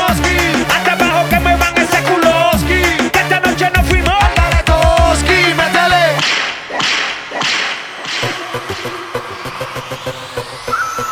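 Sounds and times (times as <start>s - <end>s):
thumping electronic beat with rhythmic percussion: 0.0s - 10.8s
whip cracks: 6.2s - 8.9s.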